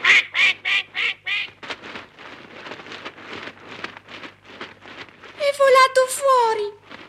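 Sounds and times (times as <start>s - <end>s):
duckling quacking: 0.0s - 1.6s
people talking: 5.4s - 6.8s.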